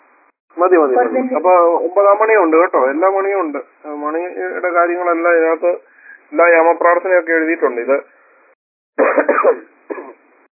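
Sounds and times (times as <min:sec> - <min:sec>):
speech: 0:00.6 - 0:08.1, 0:09.0 - 0:09.7
person with a cold coughing: 0:09.0 - 0:10.2.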